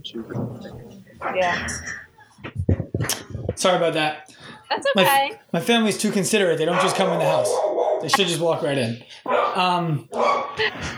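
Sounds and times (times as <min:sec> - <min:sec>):
speech: 0:00.0 - 0:02.0, 0:03.0 - 0:10.9
female dog barking with whiny yelps: 0:06.0 - 0:08.2, 0:09.3 - 0:10.6.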